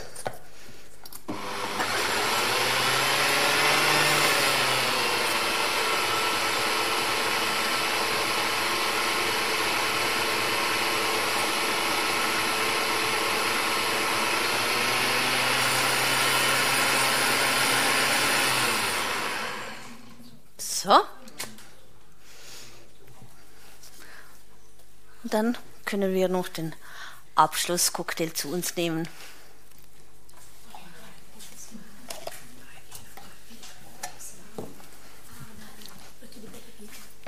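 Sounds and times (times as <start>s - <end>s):
blender motor whirring mixing a cocktail with water: 1.3s - 20.2s
speech: 25.3s - 29.3s.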